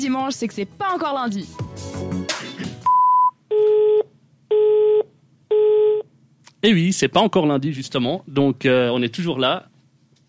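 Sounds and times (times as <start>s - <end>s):
speech: 0.0s - 2.2s, 6.6s - 9.7s
single clear steady voicemail electronic beep: 2.9s - 3.4s
buzzy telephone tones: 2.9s - 6.1s.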